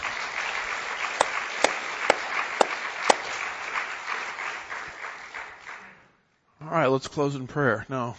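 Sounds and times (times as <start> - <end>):
sharp loud claps: 0.0 - 5.8
crowd at a Bible study gathering applauding: 0.0 - 6.0
speech: 6.8 - 8.1.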